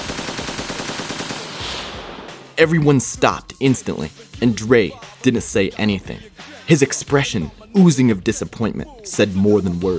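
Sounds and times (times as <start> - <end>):
automatic gunfire from an assault rifle shot into the ceiling: 0.0 - 2.3
speech: 2.6 - 9.9.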